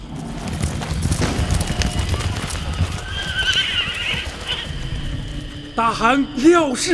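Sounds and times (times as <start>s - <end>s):
horses galloping at speed: 0.0s - 6.9s
horse whinny: 0.6s - 5.6s
speech: 5.8s - 6.9s.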